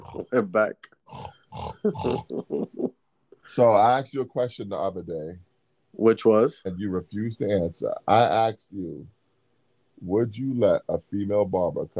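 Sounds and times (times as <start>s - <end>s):
pig grunting and oinking: 0.0s - 2.4s
speech: 0.2s - 2.9s, 3.5s - 9.2s, 10.0s - 11.9s.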